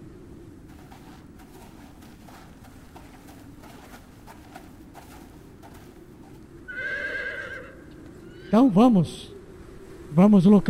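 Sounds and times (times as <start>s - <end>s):
hooves clip-clopping: 0.6s - 6.8s
horse whinnying: 6.7s - 8.6s
speech: 8.5s - 9.3s, 10.2s - 10.6s.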